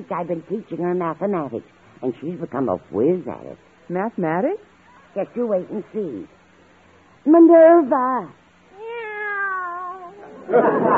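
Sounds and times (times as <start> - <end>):
speech: 0.0 - 6.4, 7.2 - 8.4, 10.5 - 10.9
cat meowing: 8.7 - 10.4
laughter: 10.2 - 10.9.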